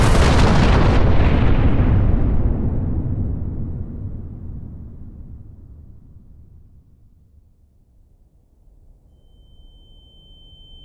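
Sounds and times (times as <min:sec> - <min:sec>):
massive explosion of a uranium atom bomb dropped by a B-29 bomber over Hiroshima: 0:00.0 - 0:06.8.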